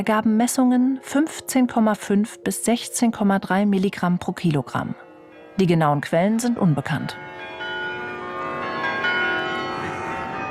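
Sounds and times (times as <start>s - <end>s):
speech: 0.0s - 5.0s, 5.6s - 7.5s
carillon bells ringing in Utrecht Netherlands: 4.8s - 10.4s.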